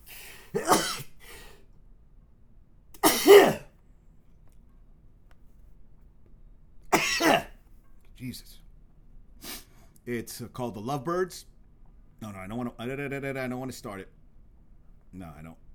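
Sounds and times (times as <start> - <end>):
person sneezing: 0.1 - 1.5, 3.0 - 3.7, 7.0 - 7.5
speech: 8.3 - 8.6, 10.1 - 11.5, 12.2 - 14.2, 15.1 - 15.7.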